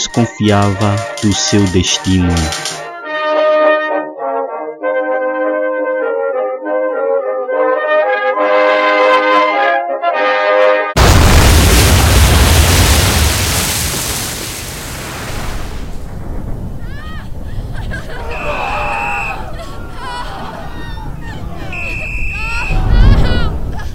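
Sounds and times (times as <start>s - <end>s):
laughter: 0.0s - 2.8s, 17.3s - 23.9s
speech: 0.0s - 2.8s
orchestral music: 0.0s - 11.0s
loud explosion on a ship with roaring rumble: 11.0s - 23.9s.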